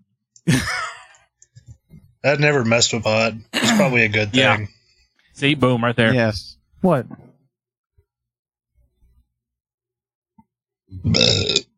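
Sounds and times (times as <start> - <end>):
speech: 0.4 - 0.8, 2.2 - 4.8, 5.4 - 7.2, 10.9 - 11.7
loud drawn-out burp: 10.9 - 11.7.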